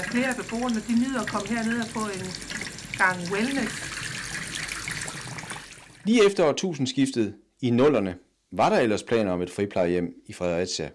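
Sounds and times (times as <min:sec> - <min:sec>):
water running from a tap to fill a whirlpool bath: 0:00.0 - 0:06.3
speech: 0:00.1 - 0:04.0, 0:06.0 - 0:10.9.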